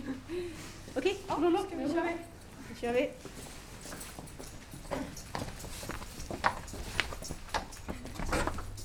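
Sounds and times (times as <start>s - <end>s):
speech: 0.3s - 4.0s
horse hooves clip-clopping at a walking pace in a riding hall: 3.2s - 8.8s.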